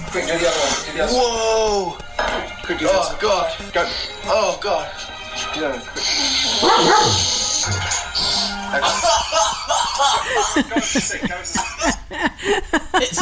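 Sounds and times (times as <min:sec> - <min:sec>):
speech: 0:00.2 - 0:02.0, 0:02.7 - 0:07.8, 0:08.7 - 0:13.2
dog barking: 0:06.6 - 0:07.4
laughter: 0:08.8 - 0:13.2.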